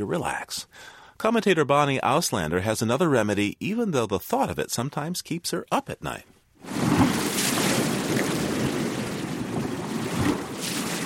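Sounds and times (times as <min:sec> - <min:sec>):
speech: 0:00.0 - 0:06.9
surf rolling onto a shore with waves breaking: 0:06.6 - 0:11.0.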